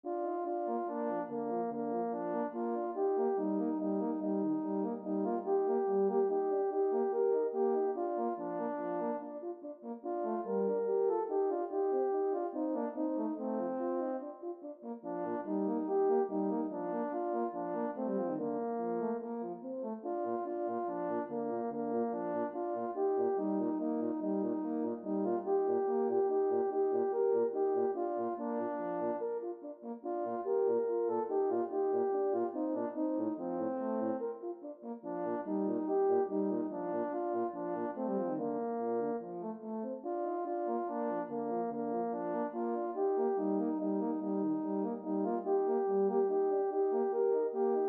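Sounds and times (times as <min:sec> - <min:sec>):
two horns playing duets in B flat major: 0:00.1 - 0:47.8.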